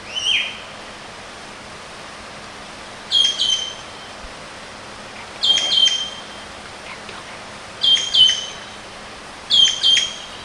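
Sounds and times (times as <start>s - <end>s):
Javan green magpie Cissa thalassina shrill whistled calls: 0.0s - 0.7s, 3.1s - 4.1s, 5.4s - 6.4s, 7.8s - 8.8s, 9.5s - 10.4s
quiet background hiss: 0.0s - 10.4s.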